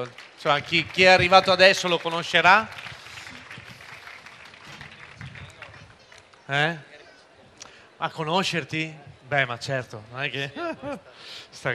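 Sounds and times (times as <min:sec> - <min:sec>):
speech: 0:00.0 - 0:02.8, 0:06.5 - 0:06.9, 0:08.0 - 0:11.7
audience applause with crowd noise: 0:00.0 - 0:06.4
laughter: 0:10.4 - 0:11.2.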